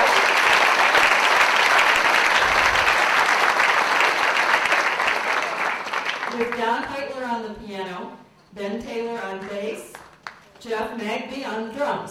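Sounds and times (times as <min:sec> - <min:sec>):
large audience applause: 0:00.0 - 0:06.6
speech: 0:06.8 - 0:10.0, 0:10.6 - 0:12.0.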